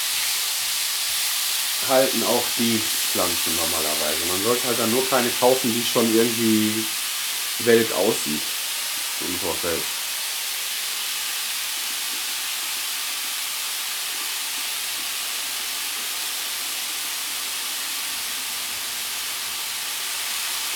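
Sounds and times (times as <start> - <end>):
portions of meat searing in a hot pan: 0.0 - 20.7
speech: 1.8 - 7.0, 7.6 - 8.6, 9.2 - 10.0.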